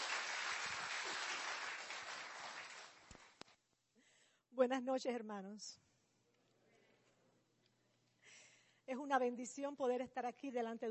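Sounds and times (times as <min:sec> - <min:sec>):
crowd applauding to welcome a speaker: 0:00.0 - 0:03.4
speech: 0:04.6 - 0:05.9, 0:08.9 - 0:10.9.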